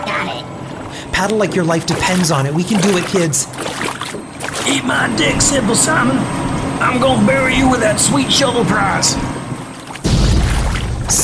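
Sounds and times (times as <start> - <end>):
speech: 1.2 - 3.9, 4.7 - 9.3
water pouring into a leaking boat: 1.2 - 4.8, 9.7 - 11.2.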